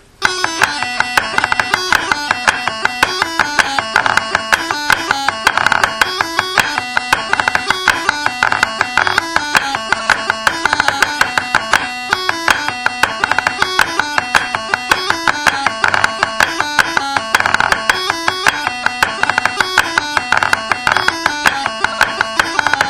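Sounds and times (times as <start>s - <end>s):
hornpipe dance tune: 0.2s - 22.8s.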